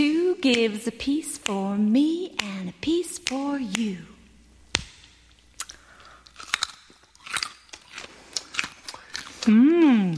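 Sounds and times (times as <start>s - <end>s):
speech: 0.0s - 4.1s, 9.4s - 10.1s
woman biting and chewing a raw carrot: 5.3s - 10.1s.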